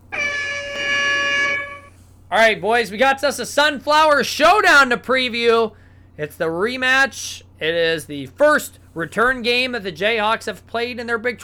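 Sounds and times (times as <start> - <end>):
air horn blast: 0.0 - 2.0
speech: 2.3 - 11.4.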